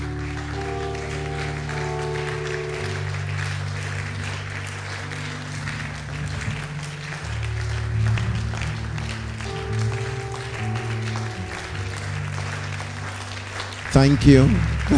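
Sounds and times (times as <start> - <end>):
large crowd clapping: 0.0 - 14.9
sustained musical tones: 0.0 - 14.9
speech: 14.0 - 14.9.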